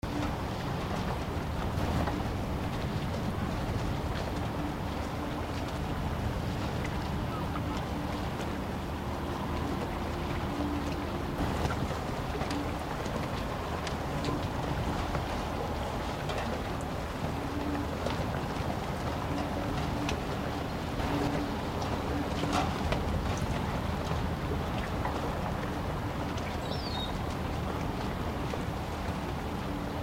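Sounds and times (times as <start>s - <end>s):
harbor docks ambience: 0.0s - 30.0s.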